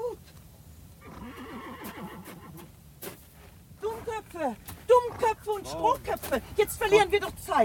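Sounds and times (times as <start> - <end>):
horses whinnying as they shy beside an overturned carriage: 1.0 - 2.7
speech: 4.4 - 4.7, 5.3 - 7.6.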